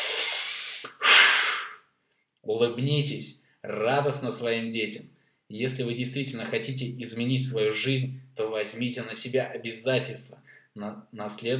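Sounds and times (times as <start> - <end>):
deep inhale through nose: 0.0 - 1.8
strong exhale through mouth: 0.0 - 1.8
speech: 2.5 - 11.5.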